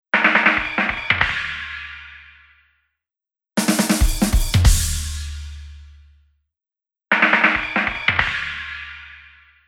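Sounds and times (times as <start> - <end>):
drums: 0.2 - 2.2, 3.6 - 6.1, 7.1 - 9.4.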